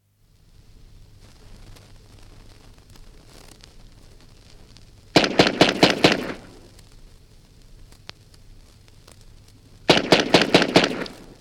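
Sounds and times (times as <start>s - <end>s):
Bren machine gun firing bursts from a 78 disc: 5.2s - 6.6s, 9.9s - 11.3s.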